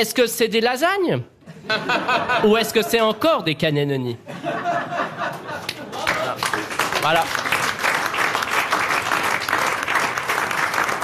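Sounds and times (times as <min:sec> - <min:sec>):
speech: 0:00.0 - 0:05.4, 0:07.0 - 0:07.6
laughter: 0:01.4 - 0:03.2, 0:04.2 - 0:06.6
studio audience at a game show giving a standing ovation: 0:05.6 - 0:11.0.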